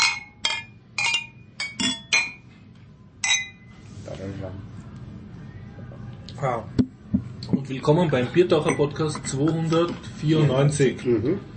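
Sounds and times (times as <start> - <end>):
beer glasses clinking in a toast: 0.0 - 2.5, 3.2 - 3.7, 8.5 - 10.1
low murmuring voices: 3.8 - 7.7
speech: 6.4 - 11.5.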